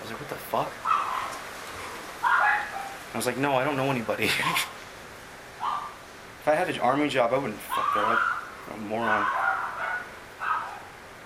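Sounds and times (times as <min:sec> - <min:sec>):
speech: 0:00.1 - 0:00.8, 0:03.2 - 0:04.8, 0:06.4 - 0:09.4
miniature schnauzer barking: 0:00.8 - 0:03.0, 0:05.6 - 0:06.0, 0:07.7 - 0:10.9.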